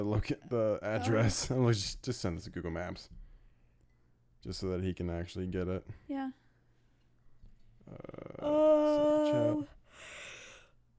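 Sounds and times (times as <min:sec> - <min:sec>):
speech: 0:00.0 - 0:03.2, 0:04.4 - 0:06.4, 0:07.9 - 0:10.1
person yawning: 0:07.9 - 0:09.7.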